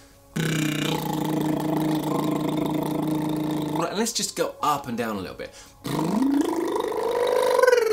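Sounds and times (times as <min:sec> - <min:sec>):
speech: 0:00.4 - 0:00.7, 0:04.0 - 0:06.0
voiced tongue and lip trill as a voice exercise: 0:00.4 - 0:04.0, 0:05.8 - 0:07.9.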